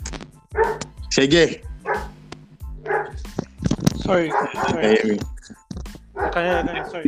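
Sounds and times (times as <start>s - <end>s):
dog barking: 0.6s - 0.9s, 1.8s - 2.2s, 2.8s - 3.3s, 4.1s - 5.0s, 6.2s - 7.0s
speech: 0.6s - 1.7s, 4.1s - 5.3s, 6.2s - 7.0s.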